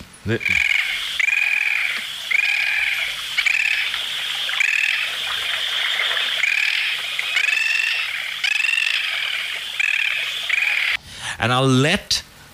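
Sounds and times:
faint hiss: 0.0s - 12.5s
speech: 0.2s - 0.7s, 11.4s - 12.2s
bird calling: 0.3s - 11.0s.

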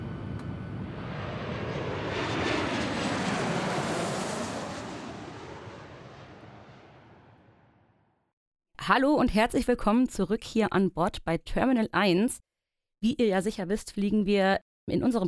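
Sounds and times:
airplane engines roaring in flight: 0.0s - 7.7s
speech: 8.9s - 15.2s.

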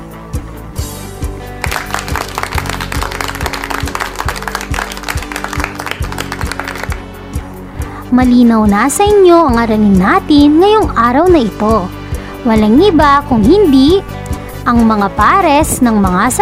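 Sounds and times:
first-grade children clapping for themselves after a lesson: 1.6s - 7.1s
speech: 8.2s - 16.4s.

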